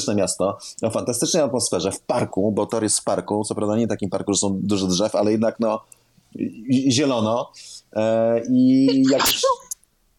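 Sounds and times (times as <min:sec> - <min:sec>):
speech: 0:00.0 - 0:09.7
person sneezing: 0:08.9 - 0:09.7.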